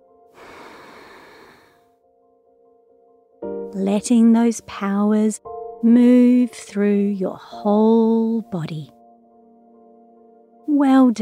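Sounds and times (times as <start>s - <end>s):
person breathing out slowly during a guided breathing exercise: 0.3s - 1.9s
speech: 3.7s - 9.0s, 10.8s - 11.2s.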